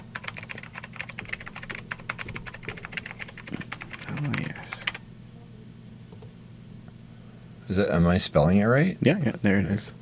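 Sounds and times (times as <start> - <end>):
rapid typing on a computer keyboard: 0.0 - 5.0
low steady hum: 0.0 - 10.0
speech: 7.7 - 10.0.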